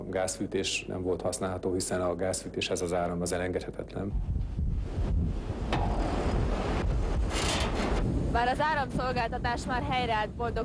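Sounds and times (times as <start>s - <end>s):
speech: 0.1s - 5.9s, 8.4s - 10.6s
stormy gale-force wind buffeting the microphone: 4.0s - 10.6s.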